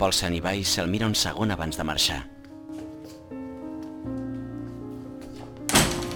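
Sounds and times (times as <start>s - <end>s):
speech: 0.0s - 2.4s
humming music: 0.0s - 6.1s
door thudding shut: 5.7s - 6.1s.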